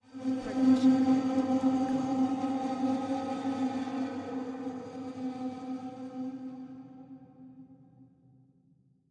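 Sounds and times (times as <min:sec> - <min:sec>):
ghostly whisper: 0:00.1 - 0:07.0.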